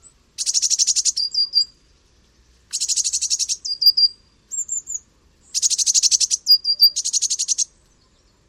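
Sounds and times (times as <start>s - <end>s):
Eurasian blue tit giving buzzy rapid churring calls and thin high notes: 0.4s - 1.7s, 2.7s - 7.7s.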